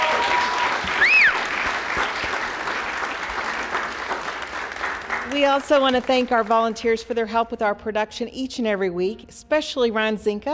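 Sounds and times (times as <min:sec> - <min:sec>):
audience applause: 0:00.0 - 0:06.3
whistle: 0:00.3 - 0:01.5
speech: 0:05.4 - 0:10.5.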